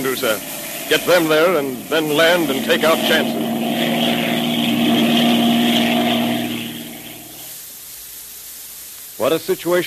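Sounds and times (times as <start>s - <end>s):
speech: 0.0s - 3.7s, 9.2s - 9.8s
propeller airplane with crippled undercarriage droning in flight: 0.0s - 7.6s.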